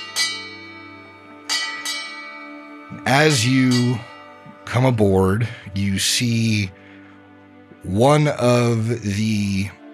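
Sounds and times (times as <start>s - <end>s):
bell ringing for work: 0.0s - 5.0s
speech: 3.0s - 4.1s, 4.8s - 6.8s, 7.8s - 9.8s.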